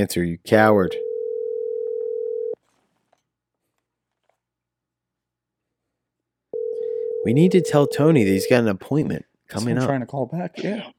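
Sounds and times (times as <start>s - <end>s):
speech: 0.0s - 1.0s, 7.2s - 10.9s
telephone dial tone after a call hangs up: 1.0s - 2.6s, 6.6s - 7.3s.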